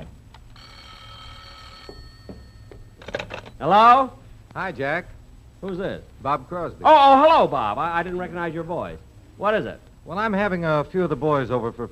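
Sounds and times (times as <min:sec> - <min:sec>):
telephone bell ringing: 0:00.6 - 0:03.0
speech: 0:03.6 - 0:11.9.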